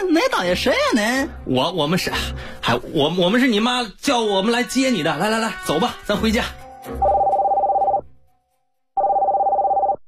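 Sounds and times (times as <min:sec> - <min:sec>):
speech: 0:00.0 - 0:07.1
telephone ringing: 0:07.0 - 0:08.0, 0:09.0 - 0:10.0.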